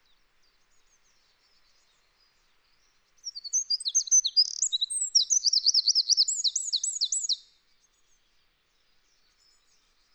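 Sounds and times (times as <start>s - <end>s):
Eurasian wren Troglodytes troglodytes song: 3.2s - 7.4s.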